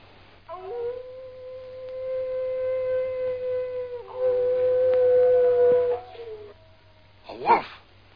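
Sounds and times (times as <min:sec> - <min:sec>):
wolf howling: 0:00.5 - 0:06.8.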